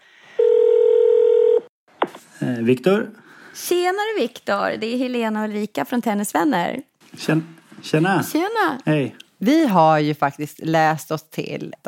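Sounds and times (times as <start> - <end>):
telephone ringback tone during an outgoing phone call: 0.4 - 1.7
speech: 2.4 - 11.8.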